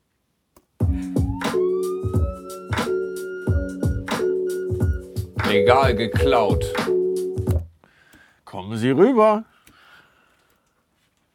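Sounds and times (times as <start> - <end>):
regular pulsing beat: 0.8 - 7.7
police siren: 1.2 - 5.0
speech: 5.6 - 7.0, 8.7 - 9.5.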